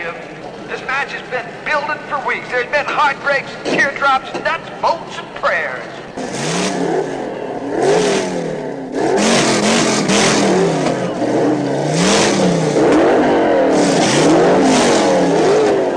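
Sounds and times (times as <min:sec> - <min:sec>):
drag race cars launching and accelerating through the gears in a heads-up race: 0:00.0 - 0:15.9
speech: 0:01.0 - 0:07.2.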